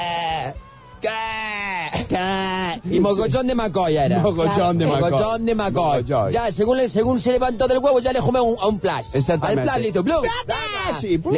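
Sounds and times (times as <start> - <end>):
person imitating a sheep-like duckling bleat: 0.0 - 2.8
speech: 2.8 - 11.3.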